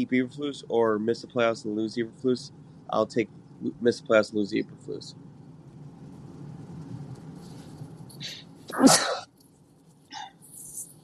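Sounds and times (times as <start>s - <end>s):
speech: 0.0s - 5.2s, 8.2s - 9.1s
low steady rumble: 0.0s - 11.0s
small faint noises: 0.0s - 11.0s
person sneezing: 8.2s - 9.3s.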